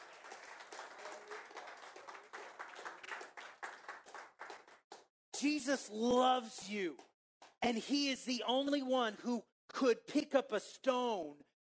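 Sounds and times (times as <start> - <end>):
audience clapping hands: 0.0 - 7.8
speech: 5.4 - 11.5.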